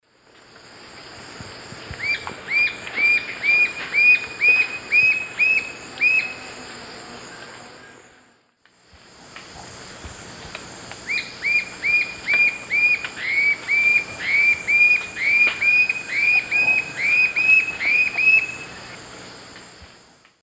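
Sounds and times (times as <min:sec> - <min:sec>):
Galbula chalcothorax calls: 0:02.0 - 0:06.5, 0:11.0 - 0:19.0.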